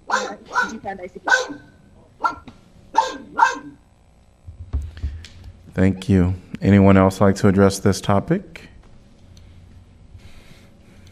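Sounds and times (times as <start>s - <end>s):
dog barking: 0.0s - 3.8s
speech: 0.6s - 2.5s, 5.8s - 8.7s
faint thuds: 4.4s - 5.6s
low rumbling handling noise: 4.4s - 5.8s.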